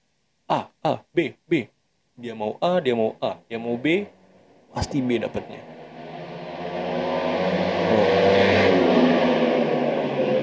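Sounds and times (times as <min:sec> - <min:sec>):
speech: 0:00.5 - 0:05.8
car revving past near a racing zone: 0:04.4 - 0:10.4.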